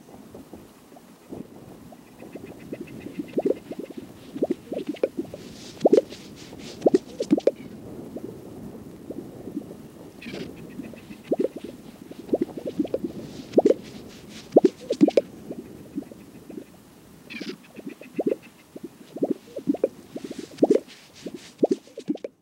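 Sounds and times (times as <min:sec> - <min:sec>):
Gunnison sage grouse display calls: 0:02.0 - 0:07.7, 0:10.2 - 0:22.3.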